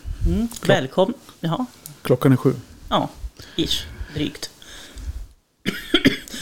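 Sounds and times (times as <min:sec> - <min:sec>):
speech: 0:00.2 - 0:04.5
person coughing with dry rough bursts: 0:05.6 - 0:06.3.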